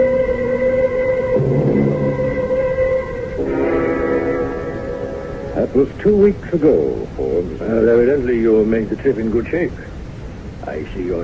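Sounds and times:
whining whistle-like tones: 0.0 - 5.6
passenger train on the Ossining line rumbling on tracks: 1.3 - 9.9
speech: 5.8 - 9.9, 10.6 - 11.2.

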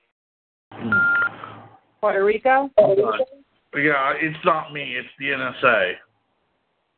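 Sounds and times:
loud steady electronic beep tone from recording device: 0.9 - 1.3, 2.8 - 3.4
speech: 2.0 - 6.1
rough hiss: 2.9 - 6.9.

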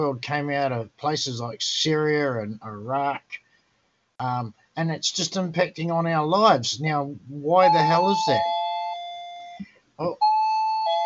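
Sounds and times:
speech: 0.0 - 3.4, 4.2 - 8.6, 10.0 - 10.3
electronic doorbell chime of a home: 7.6 - 11.0.

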